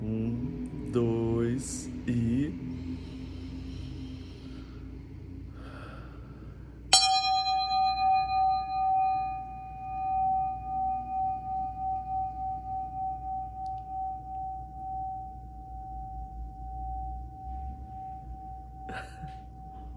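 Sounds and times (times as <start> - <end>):
faint low rumble: 0.0 - 19.9
speech: 0.9 - 2.8
small bell struck once: 6.9 - 19.9.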